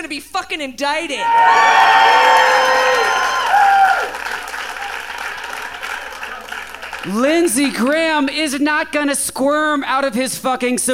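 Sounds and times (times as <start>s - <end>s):
speech: 0.0s - 2.8s, 7.0s - 10.9s
audience cheering and whooping at a political speech: 1.2s - 7.1s
audience clapping at a political speech: 1.4s - 8.2s.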